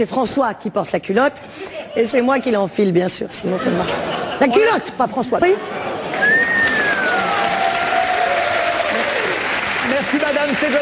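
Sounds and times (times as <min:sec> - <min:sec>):
speech: 0:00.0 - 0:06.4, 0:10.0 - 0:10.8
laughter: 0:03.4 - 0:07.6
audience applause after a comedy routine: 0:06.1 - 0:10.8.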